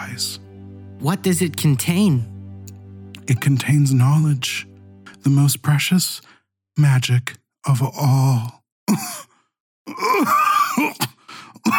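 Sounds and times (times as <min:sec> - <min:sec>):
speech: 0:00.0 - 0:00.4, 0:01.0 - 0:02.3, 0:03.3 - 0:09.3, 0:09.9 - 0:11.7
woman coughing and choking with groaning gasps: 0:08.9 - 0:09.3, 0:10.1 - 0:11.7.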